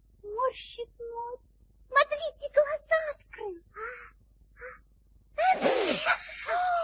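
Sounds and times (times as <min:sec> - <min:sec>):
speech: 0:00.5 - 0:04.2
sneeze: 0:05.4 - 0:06.5.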